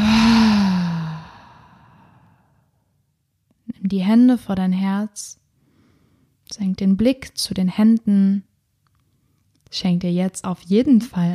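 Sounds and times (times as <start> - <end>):
deep slow breath exhaled through the mouth: 0.0 - 2.5
speech: 3.9 - 5.4, 6.5 - 8.5, 9.7 - 11.3.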